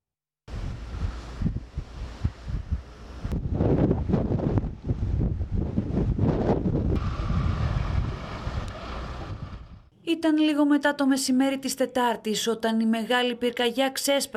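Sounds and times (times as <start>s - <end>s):
storm wind gusting over 100 km per hour during a wildfire in Rethymno: 0.5s - 9.9s
speech: 10.1s - 14.3s.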